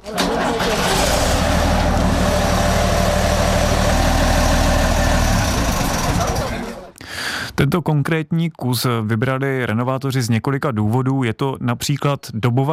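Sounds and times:
restored Škoda 706 RO bus diesel engine running: 0:00.0 - 0:07.0
speech: 0:07.7 - 0:12.7.

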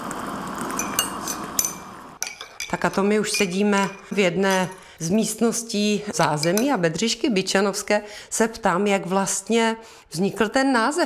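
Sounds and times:
water boiling: 0:00.0 - 0:04.2
speech: 0:02.7 - 0:11.0.

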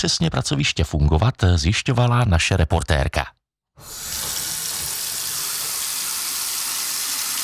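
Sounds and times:
speech: 0:00.0 - 0:04.1
water gushing from a home tap on Valachův žleb street, Jižní Svahy: 0:03.8 - 0:07.4.

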